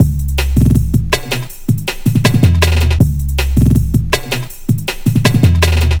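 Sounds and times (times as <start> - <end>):
drum and bass drum loop: 0.0 - 5.9.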